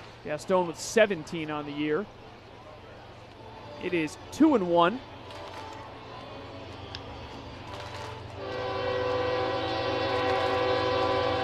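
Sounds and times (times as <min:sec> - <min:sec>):
train running past behind the third-base side of a ballpark: 0:00.0 - 0:11.4
speech: 0:00.2 - 0:02.2, 0:03.8 - 0:05.4
train horn blaring behind a ballpark: 0:08.4 - 0:11.4.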